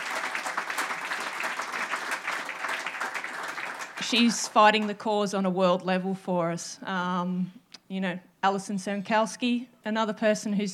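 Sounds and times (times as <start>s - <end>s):
room full of people clapping: 0.0s - 5.0s
speech: 4.0s - 10.7s.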